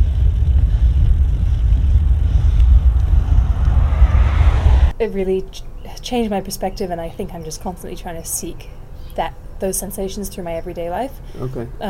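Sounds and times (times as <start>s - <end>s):
car engine and tire drone on a road through a quiet forest: 0.0s - 4.9s
speech: 5.0s - 11.8s.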